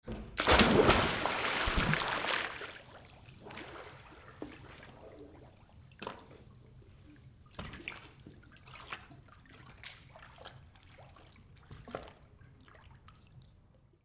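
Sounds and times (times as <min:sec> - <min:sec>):
diving into a pool: 0:00.4 - 0:04.2.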